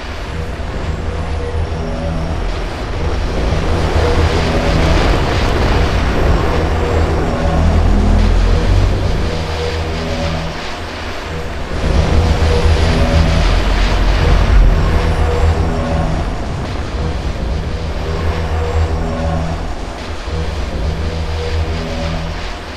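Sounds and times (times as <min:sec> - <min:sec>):
straton hovering hum: 0:00.0 - 0:22.7.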